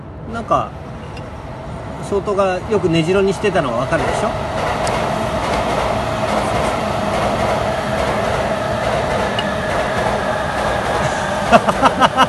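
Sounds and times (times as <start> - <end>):
Yamanote Line commuter train passing: 0.0 - 12.2
speech: 0.3 - 0.8, 2.1 - 4.6, 11.5 - 12.2
train wheels clicking over rail joints: 3.8 - 11.1
laughter: 10.9 - 12.2.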